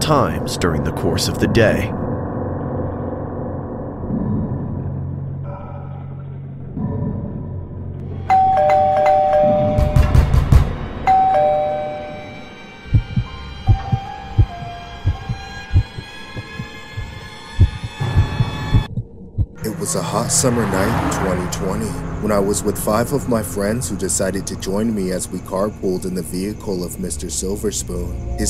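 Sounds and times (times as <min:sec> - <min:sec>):
speech: 0:00.1 - 0:02.0, 0:20.2 - 0:28.4
low droning hum: 0:01.6 - 0:08.0, 0:12.9 - 0:28.4
doorbell chiming: 0:08.3 - 0:10.3, 0:11.1 - 0:12.5.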